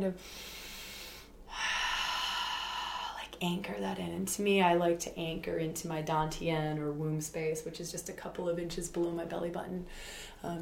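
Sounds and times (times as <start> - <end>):
speech: 0.0 - 0.6, 3.4 - 10.6
deep breath drawn in and let out: 0.2 - 3.2, 9.9 - 10.4.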